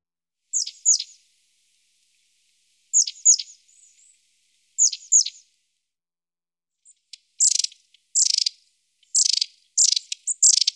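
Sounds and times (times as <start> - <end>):
long-tailed tit chirps and trilled notes: 0.5 - 1.2, 2.9 - 3.6, 4.8 - 5.4, 7.1 - 10.7.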